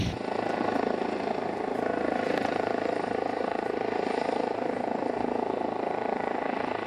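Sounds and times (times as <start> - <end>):
helicopter rotor droning while lifting off with rope: 0.0 - 6.8.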